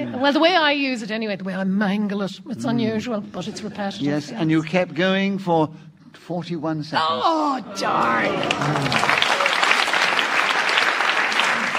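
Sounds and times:
speech: 0.1s - 9.2s
studio audience applause: 8.0s - 11.7s.

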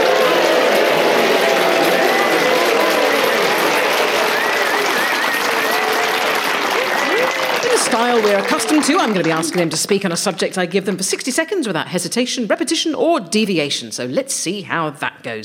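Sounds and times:
studio audience whoops and cheers: 0.0s - 8.8s
studio audience applauding: 0.0s - 11.3s
speech: 8.0s - 15.4s.

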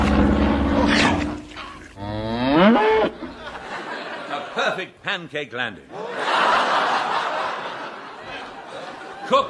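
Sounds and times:
cattle mooing: 0.0s - 3.3s
laughter: 3.2s - 4.8s, 5.9s - 9.4s
speech: 4.7s - 7.0s, 9.3s - 9.4s.

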